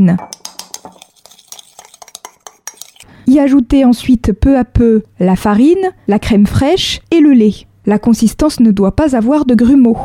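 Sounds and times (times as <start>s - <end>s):
speech: 0.0s - 0.5s, 3.4s - 10.0s
hand whisk stirring eggs and sugar in a mixing bowl: 0.2s - 3.1s.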